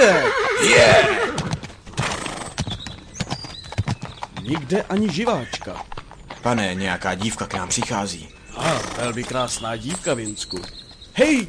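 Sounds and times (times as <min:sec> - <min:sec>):
speech: 0:00.0 - 0:01.2, 0:04.5 - 0:11.4
horse whinnying: 0:00.0 - 0:02.7, 0:08.4 - 0:09.6
horse hooves clip-clopping: 0:00.6 - 0:11.4.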